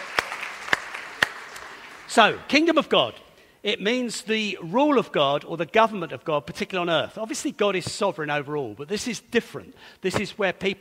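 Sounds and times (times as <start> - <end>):
sharp hand claps: 0.0 - 2.2
speech: 2.1 - 10.8.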